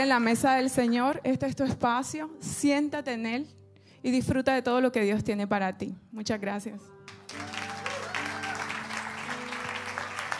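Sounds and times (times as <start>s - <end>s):
speech: 0.0s - 7.4s
audience applause: 7.3s - 10.3s.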